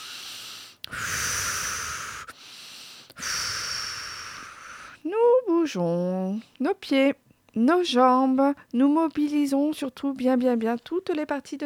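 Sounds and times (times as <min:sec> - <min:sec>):
deep breaths: 0:00.0 - 0:05.0
speech: 0:05.7 - 0:11.6.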